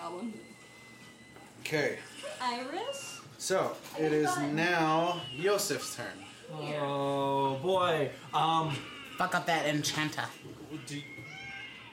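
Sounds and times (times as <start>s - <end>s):
speech: 1.6s - 11.2s
cat meowing, thin and high-pitched: 10.8s - 11.9s.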